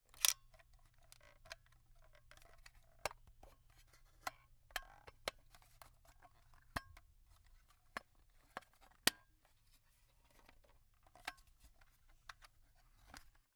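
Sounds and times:
plastic point-and-shoot camera being fiddled with and handled: 0.1 - 13.5.

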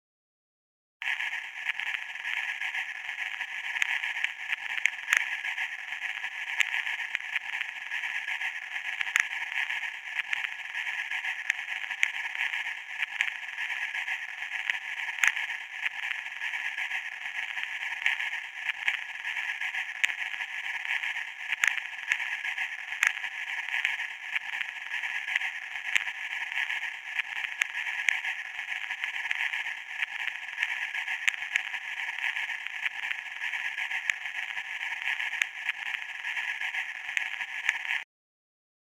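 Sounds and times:
sci-fi static noise: 1.0 - 38.0.

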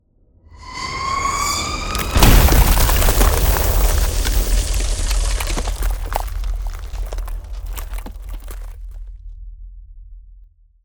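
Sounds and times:
ice spell frostbolt direct damage impact: 1.5 - 9.0.

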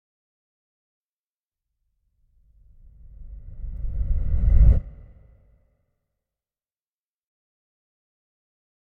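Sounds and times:
reversed sub air whoosh: 2.6 - 5.6.

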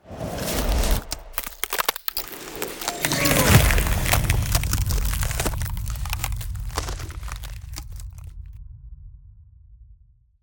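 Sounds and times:
ice spell freezing and slowing with frost web: 0.1 - 8.3.

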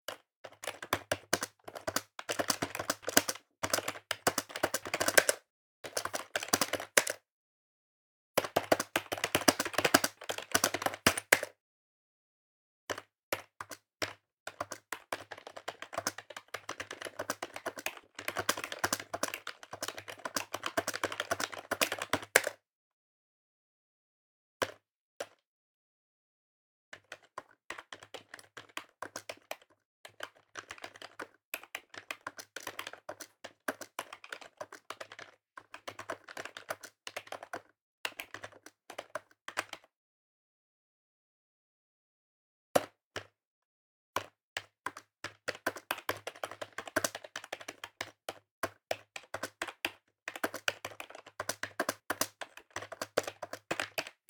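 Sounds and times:
desktop PS2 computer keyboard: 0.1 - 7.2, 8.4 - 11.5, 12.9 - 22.6, 27.0 - 39.9, 44.2 - 54.2.

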